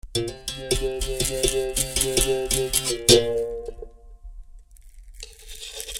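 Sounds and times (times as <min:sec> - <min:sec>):
berimbau: 0:00.0 - 0:04.1.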